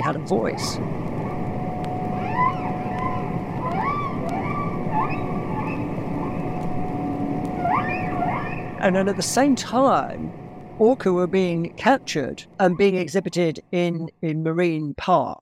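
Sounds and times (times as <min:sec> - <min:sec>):
faint steady hum: 0:00.0 - 0:15.3
speech: 0:00.1 - 0:01.0, 0:08.8 - 0:15.3
humpback whale song: 0:00.4 - 0:09.8.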